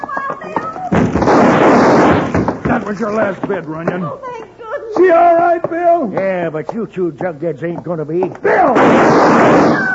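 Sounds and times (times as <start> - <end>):
gunfire in a radio drama shootout: 0.9 - 2.8, 8.7 - 9.9
speech: 2.8 - 4.4, 5.0 - 9.9.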